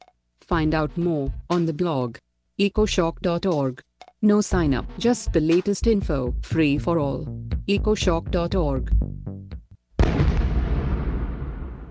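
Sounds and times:
speech: 0.5 - 9.4
stun grenade explosion: 10.0 - 11.8.

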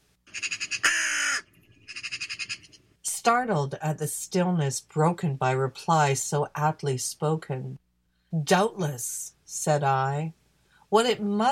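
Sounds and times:
raven cawing: 0.3 - 2.8
speech: 3.2 - 11.5.

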